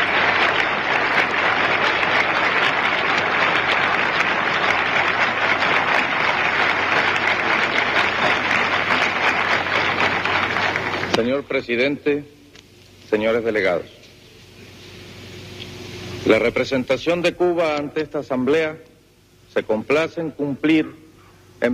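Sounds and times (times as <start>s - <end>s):
large assembly audience applauding: 0.0s - 11.3s
speech: 11.4s - 12.4s, 13.1s - 14.0s, 16.3s - 18.9s, 19.5s - 21.0s, 21.6s - 21.7s.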